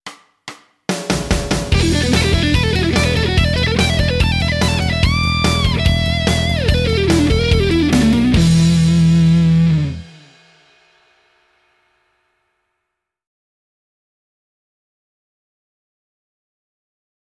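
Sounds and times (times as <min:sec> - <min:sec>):
fast guitar lick: 0:01.7 - 0:10.4.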